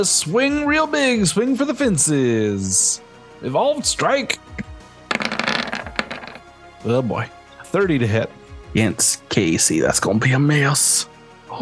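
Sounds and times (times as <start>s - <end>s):
speech: 0.0s - 4.7s, 6.8s - 11.5s
dice tumbling across a hard surface for a tabletop game attack roll: 5.1s - 6.4s.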